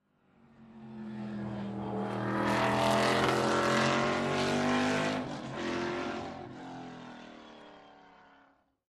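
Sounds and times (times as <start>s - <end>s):
sports car passing by: 0.4s - 7.2s.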